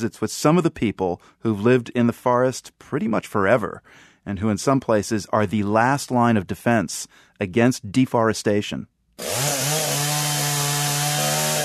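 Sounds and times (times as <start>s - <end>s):
speech: 0.0s - 9.7s
chainsaw cutting a wooden timber hauler: 9.2s - 11.6s.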